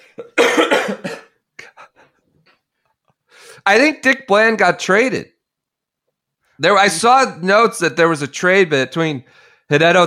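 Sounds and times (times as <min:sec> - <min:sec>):
person coughing: 0:00.0 - 0:02.0
speech: 0:03.7 - 0:05.3, 0:06.6 - 0:10.0.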